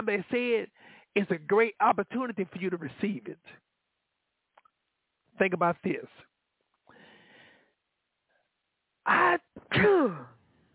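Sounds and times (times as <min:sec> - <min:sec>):
speech: 0:00.0 - 0:03.7, 0:05.4 - 0:06.3, 0:09.0 - 0:10.4
loud sneeze: 0:09.1 - 0:10.4.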